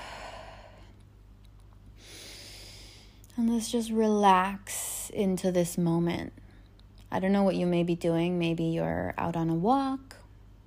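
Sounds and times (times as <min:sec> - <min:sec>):
deep breathing: 0:00.0 - 0:01.0, 0:02.0 - 0:03.2
speech: 0:03.4 - 0:06.4, 0:07.1 - 0:10.2.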